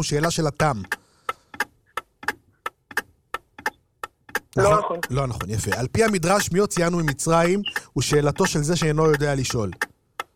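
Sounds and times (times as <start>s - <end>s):
speech: 0.0s - 1.0s, 4.6s - 9.9s
clock ticking: 0.0s - 10.3s.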